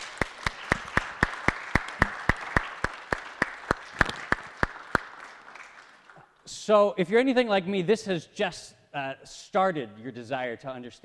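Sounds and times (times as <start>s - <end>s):
audience applauding: 0.0s - 6.3s
one sharp clapper keeping a quick even rhythm: 0.0s - 6.3s
speech: 6.6s - 11.0s.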